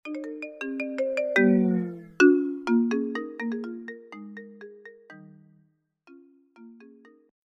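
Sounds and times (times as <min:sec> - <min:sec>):
Doppler-shifted iOS ringtones: 0:00.1 - 0:02.6.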